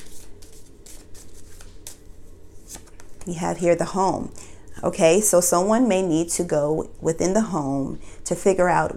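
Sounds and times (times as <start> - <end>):
Lenormand cards pulled from a card deck: 0.0 - 3.2
soft rustle: 0.0 - 3.4
speech: 3.2 - 8.9.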